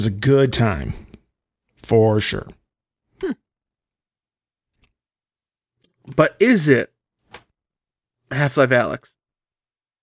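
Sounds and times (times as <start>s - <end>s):
speech: 0.0s - 1.0s, 1.8s - 2.6s, 3.2s - 3.4s, 6.1s - 6.9s, 8.3s - 9.2s
person sneezing: 3.2s - 3.4s.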